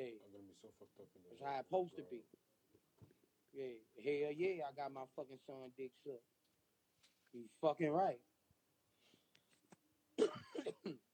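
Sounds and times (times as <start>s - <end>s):
speech: 0.0s - 2.4s, 3.6s - 6.3s, 7.3s - 8.3s, 10.2s - 11.0s
harsh hacking coughs: 10.2s - 11.1s.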